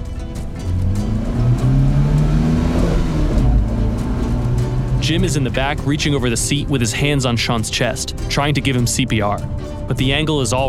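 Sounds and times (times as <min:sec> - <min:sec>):
car engine revving and accelerating: 0:00.0 - 0:07.0
speech: 0:05.1 - 0:10.6.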